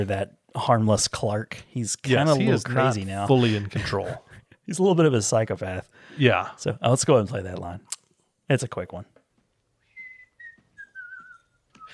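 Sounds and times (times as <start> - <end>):
speech: 0.0 - 7.9, 8.5 - 9.1
quiet room noise: 0.0 - 11.9
man whistling a short melody: 9.8 - 11.9.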